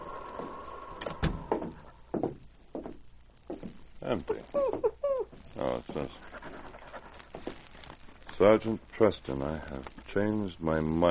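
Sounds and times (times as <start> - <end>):
wooden cabin door creaking open: 0.3 - 1.9
speech: 4.1 - 6.3, 8.4 - 11.1.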